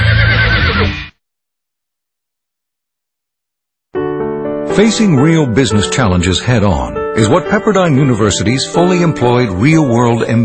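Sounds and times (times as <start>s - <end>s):
horse giving a loud whinny: 0.0s - 1.1s
speech: 4.8s - 10.4s.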